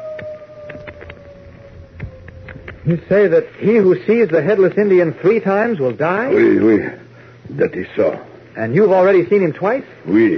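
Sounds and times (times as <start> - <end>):
eerie werewolf howl: 0.0 - 3.4
faint knocks and crackles: 0.2 - 3.0
speech: 2.8 - 7.0, 7.6 - 10.3.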